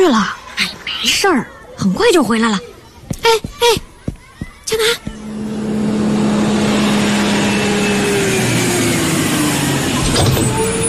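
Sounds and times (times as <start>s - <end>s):
speech: 0.0s - 3.9s, 4.7s - 5.1s
bus engine rumble while pulling up and stopping: 3.1s - 10.8s.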